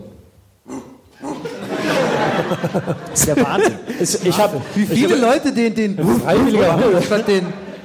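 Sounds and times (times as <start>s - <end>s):
person giving a gravelly impression of a barking dog: 0.6s - 1.5s
laughter: 1.4s - 4.1s
speech: 2.5s - 7.6s.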